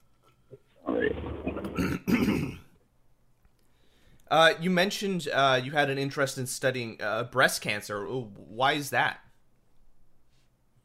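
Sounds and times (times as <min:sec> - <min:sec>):
person clearing phlegm from the throat: 0:00.9 - 0:02.8
speech: 0:04.3 - 0:09.2.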